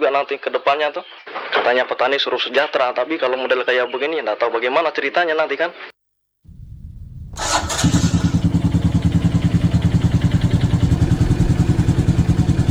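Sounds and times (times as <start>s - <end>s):
speech: 0.2s - 5.9s
motorcycle engine being warmed up in the early morning: 6.5s - 12.6s.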